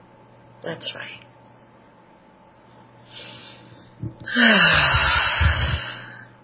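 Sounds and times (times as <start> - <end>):
speech: 0.6 - 1.3, 4.0 - 5.2
deep breath in during a guided relaxation exercise: 3.1 - 6.3.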